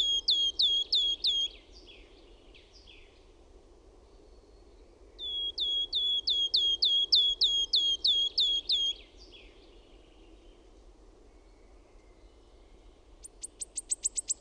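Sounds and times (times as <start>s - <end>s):
Wood warbler song of sharp high downslurred ticking notes: 0.0s - 3.1s, 5.2s - 9.5s, 13.2s - 14.3s.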